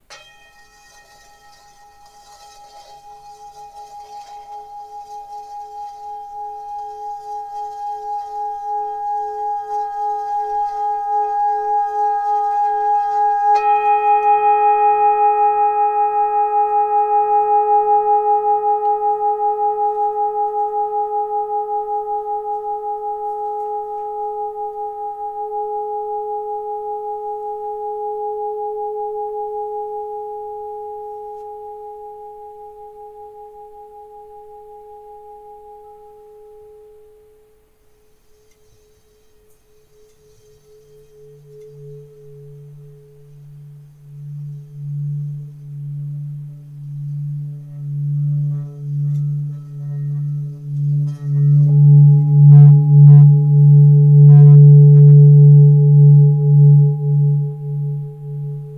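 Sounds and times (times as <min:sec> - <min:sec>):
Bengal singing bowl 1.3-1.4 kg tuned to G sharp: 0:00.0 - 0:58.7.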